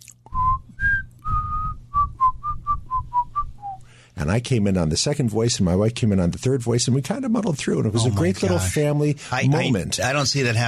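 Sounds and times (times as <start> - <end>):
person whistling a fugue melody: 0.3 - 3.8
speech: 4.2 - 10.6.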